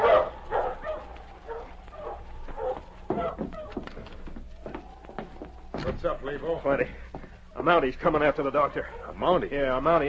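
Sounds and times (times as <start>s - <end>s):
several sled dogs barking and yipping excitedly: 0.0s - 5.8s, 8.6s - 9.4s
speech: 5.8s - 10.0s.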